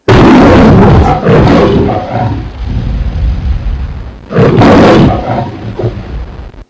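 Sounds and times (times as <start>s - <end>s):
lion roaring: 0.1s - 6.2s.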